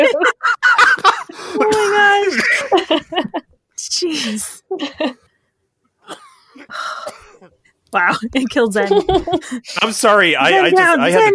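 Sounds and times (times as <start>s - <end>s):
laughter: 0.0s - 3.6s, 8.8s - 10.0s
coughing fit with harsh hacking coughs: 0.8s - 2.8s, 6.0s - 7.7s
speech: 8.0s - 11.3s.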